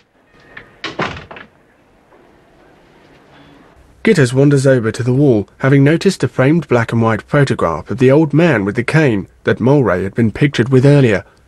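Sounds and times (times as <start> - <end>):
wooden office door closing with latch knocks: 0.0 - 2.3
speech: 4.0 - 11.4.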